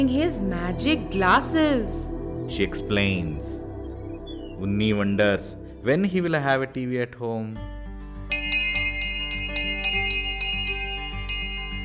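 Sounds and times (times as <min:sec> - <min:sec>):
speech: 0:00.0 - 0:03.5, 0:04.6 - 0:07.7
school bell ringing: 0:08.3 - 0:11.8.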